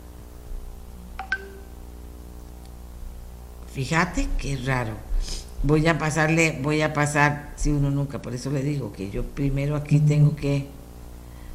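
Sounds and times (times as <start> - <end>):
steady low electrical hum: 0.0 - 11.5
telephone keypad beeps with faint clicks: 1.2 - 1.7
speech: 3.8 - 10.8.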